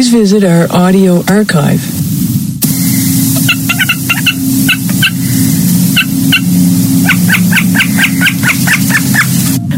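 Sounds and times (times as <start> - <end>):
speech: 0.0 - 2.1
constant low rumble of wind: 0.0 - 9.7
common snipe calling with sharp chipping notes: 2.7 - 9.6.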